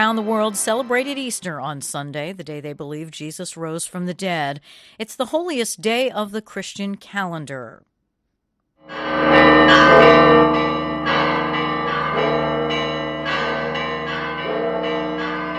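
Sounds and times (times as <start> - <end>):
church bells pealing in Jerusalem on Easter Sunday at the Garden Tomb: 0.0 - 2.0, 8.9 - 15.5
speech: 0.0 - 7.9.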